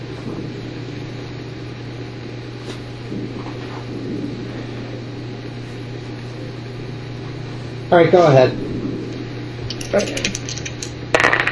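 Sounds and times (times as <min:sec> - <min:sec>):
steady low hum: 0:00.0 - 0:11.4
speech: 0:07.9 - 0:08.6, 0:09.9 - 0:10.4
two dice rolling across a hard tabletop: 0:09.7 - 0:11.4.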